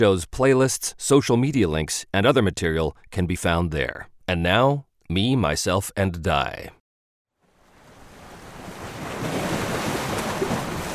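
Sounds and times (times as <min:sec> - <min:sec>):
speech: 0:00.0 - 0:06.8
ocean waves washing against a rocky shore: 0:07.6 - 0:10.9.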